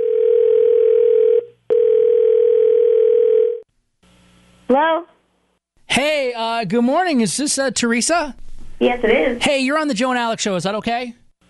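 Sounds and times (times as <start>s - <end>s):
outgoing phone call ringing tones on the line: 0.0s - 3.6s
speech: 4.7s - 5.1s, 6.0s - 11.4s.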